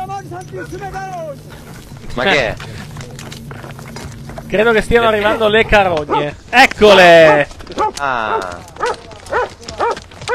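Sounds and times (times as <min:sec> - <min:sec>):
speech: 0:00.3 - 0:02.8, 0:04.5 - 0:09.0
dog barking: 0:06.1 - 0:06.3, 0:07.2 - 0:10.3.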